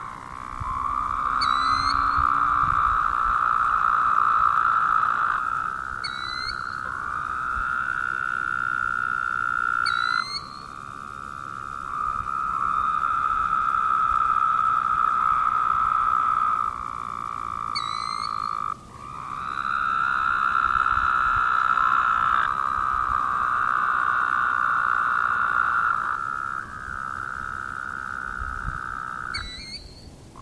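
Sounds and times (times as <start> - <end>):
high chirps: 0.0 - 20.6, 29.3 - 30.3
Woodhouse's toad chorus of buzzy trills: 0.0 - 30.3.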